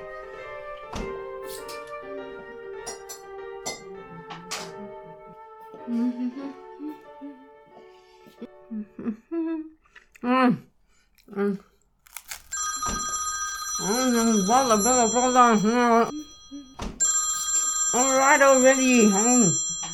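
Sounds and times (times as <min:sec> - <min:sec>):
speech: 0:05.9 - 0:07.0, 0:14.5 - 0:16.2, 0:18.2 - 0:19.6
crunchy chewing-like noises: 0:11.0 - 0:12.6
telephone bell ringing: 0:12.5 - 0:19.9.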